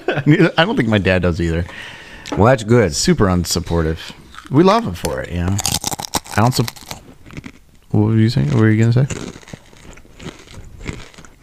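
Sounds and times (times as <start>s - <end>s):
speech: 0.2s - 5.7s, 6.4s - 6.8s, 7.9s - 9.5s
person chewing crunchy snacks while taste-testing: 3.6s - 11.4s.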